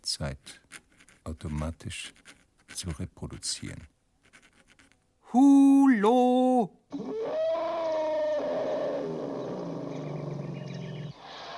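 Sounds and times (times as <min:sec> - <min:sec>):
speech: 0:00.1 - 0:03.9, 0:05.3 - 0:07.4
elephant trumpeting: 0:06.9 - 0:11.1
hiss of an old recording: 0:06.9 - 0:11.5.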